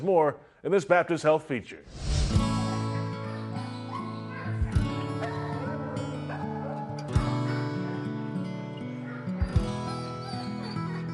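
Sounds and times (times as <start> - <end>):
speech: 0.0 - 2.6
shelter dogs barking and whimpering at a dog training center: 2.6 - 11.1.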